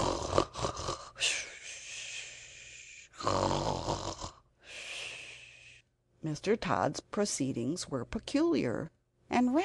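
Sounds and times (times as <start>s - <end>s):
loud rasping snoring: 0.0s - 1.2s, 3.2s - 4.4s
speech: 6.2s - 9.6s.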